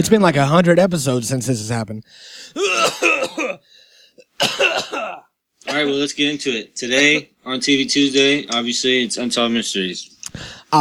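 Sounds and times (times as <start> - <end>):
speech: 0.0 - 3.7, 4.4 - 10.7
harsh voiced coughing fit: 2.5 - 6.0.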